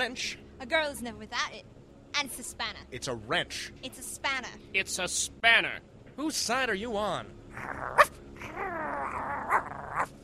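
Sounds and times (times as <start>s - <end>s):
speech: 0.0s - 10.2s
dog growling: 7.5s - 10.2s.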